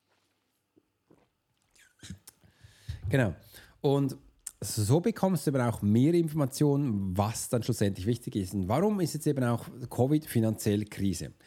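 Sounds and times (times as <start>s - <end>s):
quiet mouth sounds: 1.0s - 3.0s
slurping and swallowing water: 1.1s - 2.4s
soft mouth clicks while sipping water: 1.6s - 2.4s
speech: 3.1s - 11.4s.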